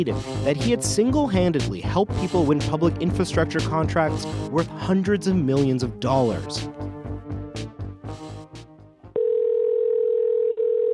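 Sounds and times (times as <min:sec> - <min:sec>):
speech: 0:00.0 - 0:06.9
telephone call tone from calling a cell phone: 0:09.2 - 0:10.9.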